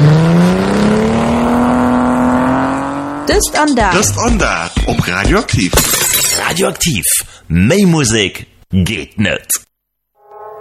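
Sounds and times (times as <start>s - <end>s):
new Ford Mustang engine revving as it accelerates: 0.0s - 4.3s
speech: 3.4s - 9.7s.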